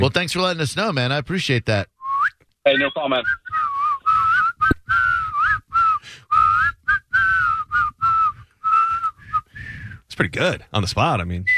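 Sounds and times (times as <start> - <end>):
speech: 0.0 - 1.9, 2.6 - 3.5, 10.2 - 11.5
person whistling a tune through teeth: 2.0 - 9.8.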